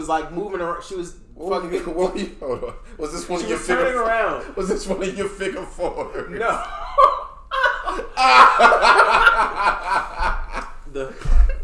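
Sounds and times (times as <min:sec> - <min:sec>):
speech: 0:00.0 - 0:07.1, 0:08.2 - 0:11.6
several people laughing: 0:01.7 - 0:11.6
coughing: 0:06.6 - 0:11.6.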